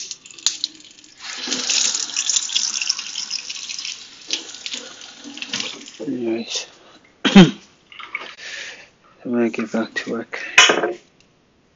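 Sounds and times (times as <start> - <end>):
tap water running into a sink while dishes are washed: 0.0 - 6.1
speech: 6.2 - 6.7, 7.4 - 7.6, 9.4 - 11.0.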